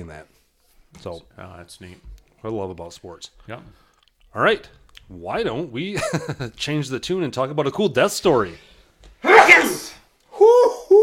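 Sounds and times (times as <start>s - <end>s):
speech: 0.0s - 8.7s, 9.4s - 10.0s
person sneezing: 9.2s - 10.0s
person calling out excitedly: 9.2s - 11.0s.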